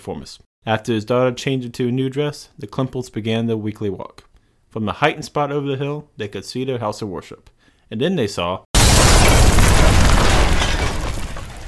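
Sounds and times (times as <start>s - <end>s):
speech: 0.0s - 8.7s
church window glass shattering: 8.8s - 11.6s
gas explosion blast roar in a church: 8.8s - 11.6s.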